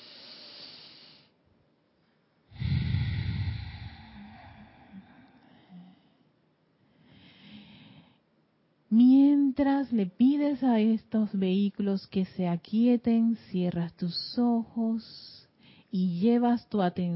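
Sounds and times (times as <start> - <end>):
slow deep breathing during a guided meditation: 2.5 - 8.2
speech: 9.0 - 17.1.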